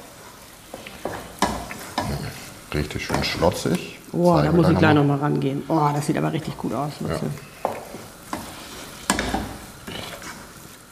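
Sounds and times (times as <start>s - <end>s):
risotto sizzling softly in a pan: 0.0s - 10.9s
spoon scraping a pan while stirring risotto: 0.7s - 3.4s, 7.2s - 10.6s
speech: 2.8s - 7.5s.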